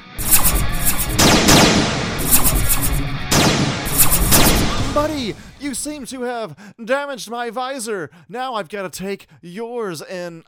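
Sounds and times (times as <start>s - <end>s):
energy blasts firing in a fight: 0.0s - 5.9s
speech: 5.0s - 10.4s.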